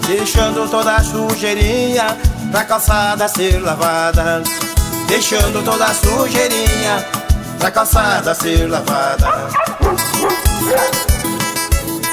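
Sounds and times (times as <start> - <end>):
speech: 0.1 - 11.1
dog barking and yipping: 9.2 - 11.4
steady pounding rhythmic music beat: 9.2 - 11.9.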